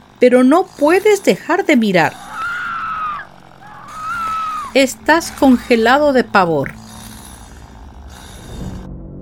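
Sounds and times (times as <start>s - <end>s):
speech: 0.2s - 2.2s, 4.8s - 6.8s
horror movie scream: 2.1s - 5.0s.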